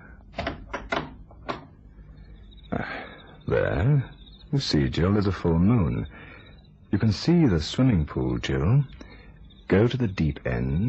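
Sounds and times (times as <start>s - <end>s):
garden door handle clunking and rattling: 0.3s - 1.7s
speech: 3.5s - 6.2s, 6.9s - 9.0s, 9.7s - 10.8s.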